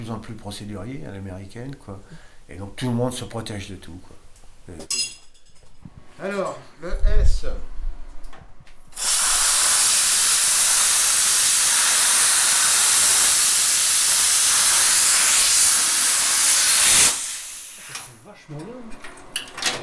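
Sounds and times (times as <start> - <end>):
speech: 0.0 - 5.1, 6.2 - 7.8, 18.5 - 19.1
cutter slicing through metal up to 10 mm thick: 9.0 - 18.2.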